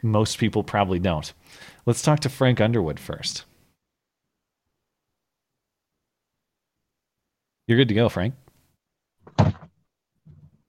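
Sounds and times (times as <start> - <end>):
speech: 0.0 - 3.5, 7.7 - 8.4
man slamming a desk: 9.3 - 9.8.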